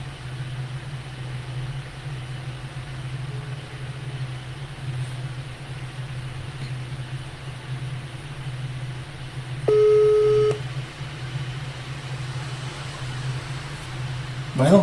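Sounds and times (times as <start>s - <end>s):
constant low droning hum: 0.0s - 14.8s
steady electronic telephone busy tone: 9.7s - 10.6s.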